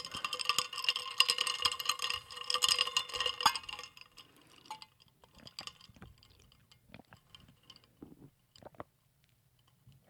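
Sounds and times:
ice cubes clinking and rattling in a glass: 0.0s - 7.9s.

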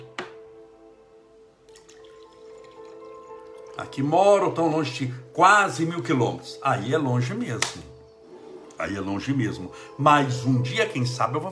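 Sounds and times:
water poured into a small drinking cup: 1.7s - 4.1s
speech: 3.8s - 7.9s, 8.8s - 11.5s.

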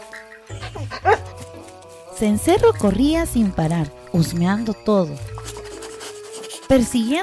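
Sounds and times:
dog barking happily in a park: 0.8s - 1.4s
speech: 2.2s - 5.3s, 6.7s - 7.2s.

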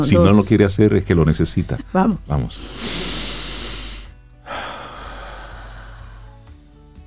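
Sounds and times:
speech: 0.0s - 3.0s
deep breathing in and out: 2.5s - 7.0s.

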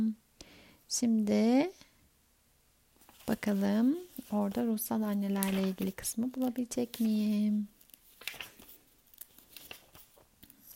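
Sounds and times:
speech: 0.9s - 1.9s, 3.3s - 8.4s
book pages being turned: 3.0s - 10.7s.

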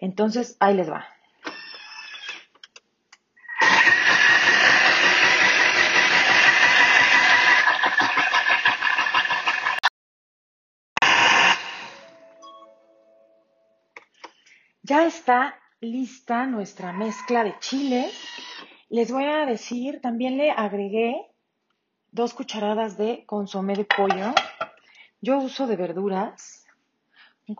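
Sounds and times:
speech: 0.0s - 1.2s, 14.9s - 21.3s, 22.1s - 24.5s, 25.2s - 26.6s
kitchen blender chopping a chili mixture: 3.4s - 9.9s, 11.0s - 12.1s, 17.7s - 18.6s.

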